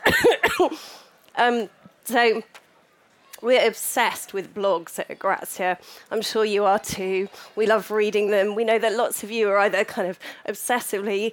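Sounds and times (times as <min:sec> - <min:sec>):
harsh raspy coughs: 0:00.0 - 0:00.8
speech: 0:00.1 - 0:02.6, 0:03.4 - 0:11.3
faint breath: 0:00.7 - 0:01.2, 0:05.8 - 0:06.1, 0:07.3 - 0:07.6, 0:10.2 - 0:10.5.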